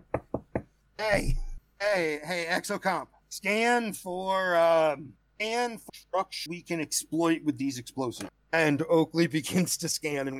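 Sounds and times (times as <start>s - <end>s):
knocking: 0.0s - 1.6s
speech: 1.0s - 10.3s.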